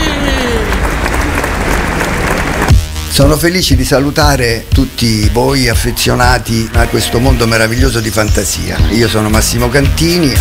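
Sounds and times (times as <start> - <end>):
audience applause from a crowd at a fan event: 0.0 - 2.9
speech: 3.2 - 10.4.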